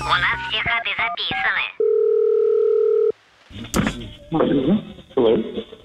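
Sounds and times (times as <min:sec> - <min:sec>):
speech: 0:00.1 - 0:01.8, 0:04.3 - 0:05.7
telephone dial tone on an outgoing call: 0:01.8 - 0:03.1.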